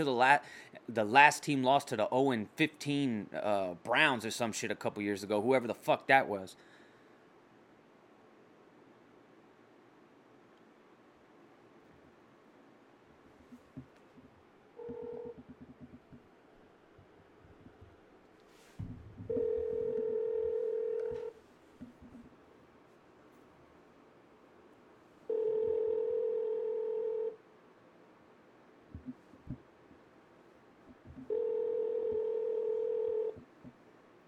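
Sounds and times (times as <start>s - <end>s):
speech: 0.0s - 6.7s
faint hiss: 0.0s - 34.2s
ringback tone of an unanswered outgoing telephone call: 14.8s - 15.4s, 19.3s - 21.3s, 25.3s - 27.4s, 31.3s - 33.4s.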